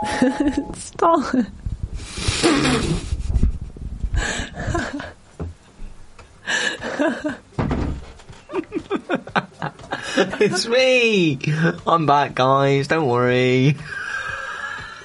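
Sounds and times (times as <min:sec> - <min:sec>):
laughter: 0:00.0 - 0:00.7, 0:04.6 - 0:05.1, 0:06.5 - 0:07.4, 0:08.4 - 0:10.8
speech: 0:00.0 - 0:03.1, 0:10.2 - 0:14.0
dull thuds and knocks at a door: 0:07.6 - 0:08.1.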